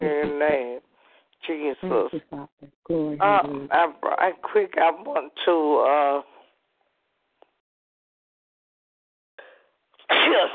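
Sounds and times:
faint shuffle or breath: 0:00.9 - 0:01.4
speech: 0:01.8 - 0:06.3
person sneezing: 0:10.0 - 0:10.5.

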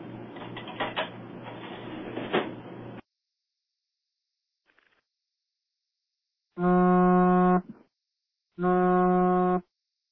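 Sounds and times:
deep foghorn-like blasts: 0:06.6 - 0:07.6, 0:08.6 - 0:09.6.

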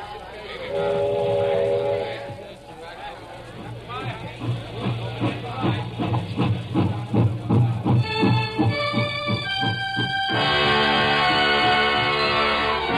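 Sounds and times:
sustained whistle-like tone: 0:00.7 - 0:02.5
train rumbling along railroad tracks: 0:00.7 - 0:12.9
train wheels clickety-clack on tracks: 0:02.2 - 0:11.9.

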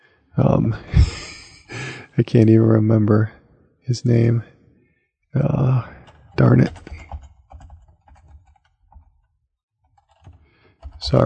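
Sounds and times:
speech: 0:00.4 - 0:01.2, 0:02.2 - 0:04.5, 0:05.3 - 0:06.8
quiet typing on a computer keyboard: 0:06.0 - 0:11.2.

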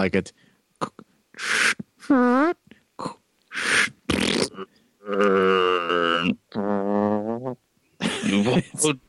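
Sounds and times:
speech: 0:00.0 - 0:07.6, 0:08.2 - 0:09.0
voice imitating a corpse farting: 0:00.8 - 0:07.6
laughter: 0:08.0 - 0:08.9.

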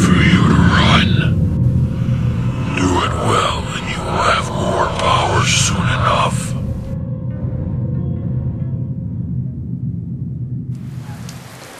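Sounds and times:
steady rain pouring on a crowd at a funeral: 0:00.0 - 0:06.9, 0:10.8 - 0:11.7
deep continuous rumble: 0:00.0 - 0:11.4.

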